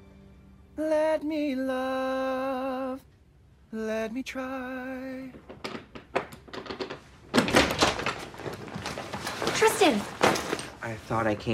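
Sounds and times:
speech: 0.8s - 3.1s, 3.7s - 5.5s, 9.6s - 11.5s
locked door thumping as it is shoved: 5.2s - 10.8s
locked door handle and frame rattling: 5.3s - 9.2s.

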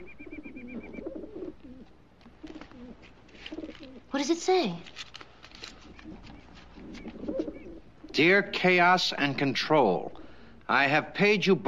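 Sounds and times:
pigeon cooing in soft throaty warbles: 0.0s - 4.1s, 5.7s - 8.3s
speech: 4.2s - 5.0s, 8.2s - 11.6s.

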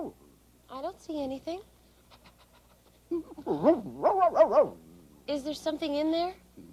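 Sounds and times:
speech: 0.0s - 2.2s, 3.1s - 6.7s
dog barking: 3.5s - 4.8s.

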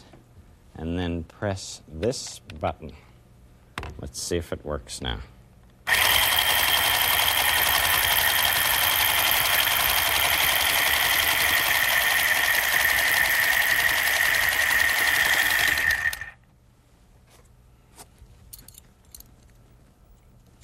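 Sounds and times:
speech: 0.8s - 3.1s, 4.0s - 5.3s
sewing machine running and stitching: 5.9s - 16.4s.

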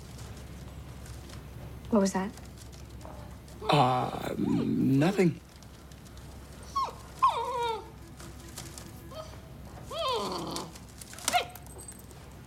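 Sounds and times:
speech: 1.9s - 2.5s, 3.6s - 5.5s
dog yipping: 6.6s - 8.0s, 9.1s - 12.4s
dog whining and whimpering: 6.6s - 8.1s, 8.9s - 11.9s.

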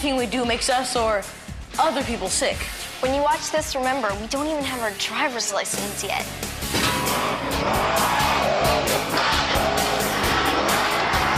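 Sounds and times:
speech: 0.0s - 6.5s
monster truck engine roaring and revving: 6.7s - 11.3s
monster truck tires scraping: 6.8s - 11.3s.

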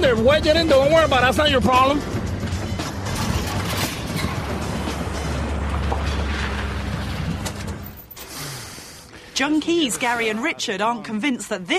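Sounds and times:
loud engine rumbling with a deep droning hum: 0.0s - 9.3s
speech: 0.1s - 2.2s, 9.4s - 11.7s.

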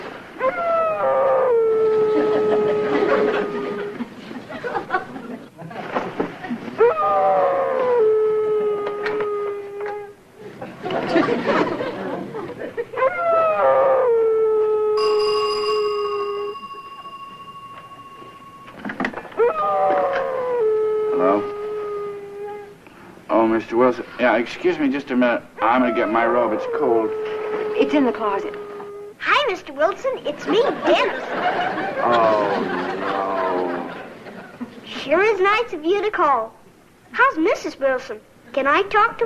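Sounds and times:
dog howling downstairs: 0.4s - 4.1s, 6.8s - 10.2s, 13.0s - 22.8s, 25.6s - 29.2s
laughter: 2.1s - 6.8s, 10.4s - 13.1s, 30.5s - 34.8s
high whine: 15.0s - 21.4s
speech: 24.2s - 28.6s, 29.5s - 33.0s, 35.1s - 36.6s, 37.2s - 39.2s.

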